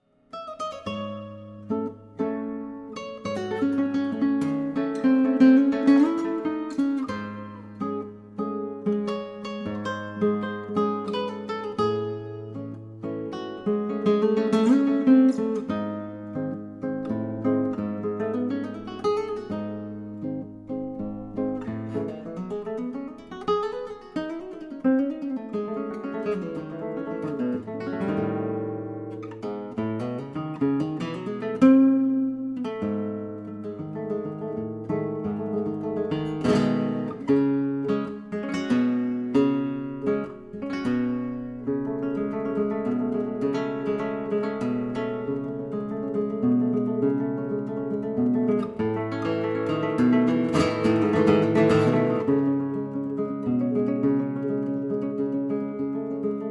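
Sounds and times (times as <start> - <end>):
Iberian guitar playing: 0.0 - 56.4.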